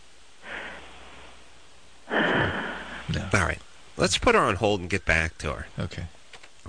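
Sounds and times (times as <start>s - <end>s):
woman breathing asleep over phone line: 0.4s - 0.9s, 2.1s - 3.1s
speech: 3.3s - 6.2s.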